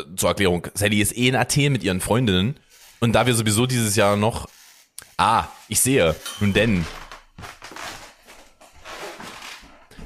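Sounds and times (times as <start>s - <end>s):
speech: 0.0s - 4.6s, 5.2s - 7.5s
soft footfall thumps: 4.5s - 10.0s
creaking as someone walks away: 6.1s - 10.0s.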